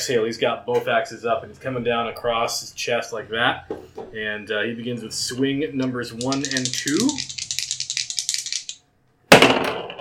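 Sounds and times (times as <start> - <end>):
speech: 0.0 - 7.4
dice rattling as they are shaken: 6.1 - 8.8.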